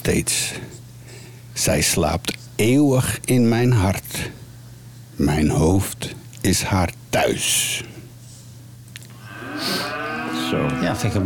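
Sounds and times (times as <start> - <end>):
speech: 0.0 - 0.8, 1.6 - 4.4, 5.2 - 7.9, 10.5 - 11.2
cow mooing: 9.2 - 11.2.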